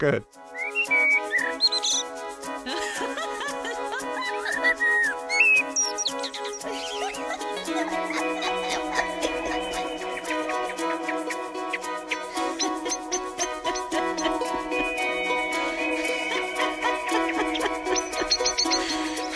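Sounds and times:
speech: 0.0s - 0.5s
steady musical backing: 0.0s - 19.3s
bright bird chirps and whistled bird calls in a song: 0.5s - 2.0s, 4.8s - 6.9s
laughter: 2.6s - 5.1s, 6.2s - 11.0s, 12.3s - 19.3s.

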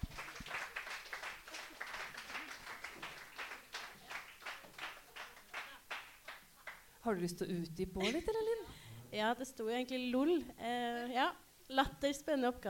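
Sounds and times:
small audience clapping for a participant: 0.0s - 6.9s
speech: 7.0s - 12.6s.

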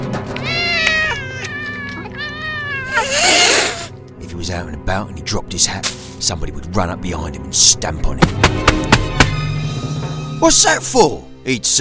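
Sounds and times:
several cats meowing and yowling: 0.3s - 3.9s
speech: 4.5s - 9.3s, 10.4s - 11.7s.

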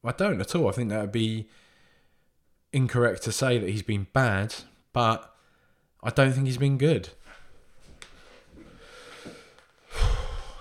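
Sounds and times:
speech: 0.0s - 1.7s, 2.7s - 5.3s, 6.0s - 7.2s
loud rushing deep breath: 1.5s - 2.4s, 5.4s - 6.0s, 8.2s - 10.5s.

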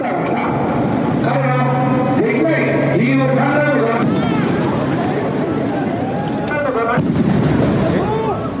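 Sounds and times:
crowd noise and voices at an outdoor election rally: 0.0s - 8.5s
gunshots at an outdoor election rally in Nara, Japan: 3.9s - 8.2s.

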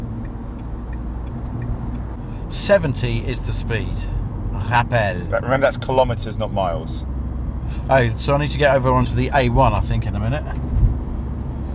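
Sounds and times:
faint regular ticking: 0.0s - 2.5s
car road rumble on a motorway in France: 0.0s - 11.7s
speech: 2.5s - 7.1s, 7.7s - 10.7s.

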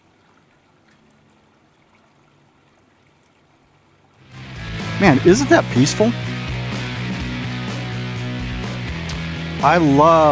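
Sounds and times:
faint water splashes: 0.0s - 4.4s
water trickling and flowing: 0.0s - 5.0s
speech: 5.0s - 6.2s, 9.6s - 10.2s.

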